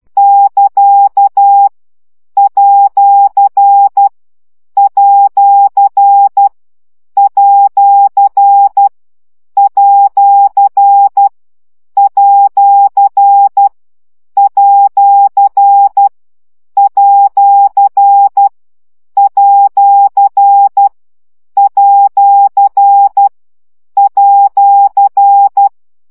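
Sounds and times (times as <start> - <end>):
morse code practice beeps at 10 baud: 0.2 - 1.7, 2.4 - 4.1, 4.8 - 6.5, 7.2 - 8.9, 9.6 - 11.3, 12.0 - 13.7, 14.4 - 16.1, 16.8 - 18.5, 19.2 - 20.9, 21.6 - 23.3, 24.0 - 25.7.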